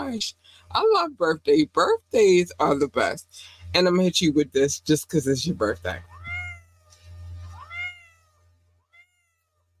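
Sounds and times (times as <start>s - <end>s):
speech: 0.1s - 6.1s
cat meowing: 6.0s - 9.6s.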